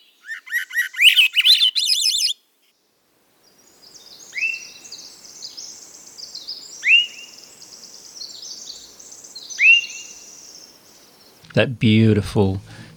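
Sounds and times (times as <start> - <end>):
Swainson's thrush singing reedy upward-spiraling whistled phrases: 0.0 - 2.4, 3.9 - 11.4
speech: 11.6 - 12.7.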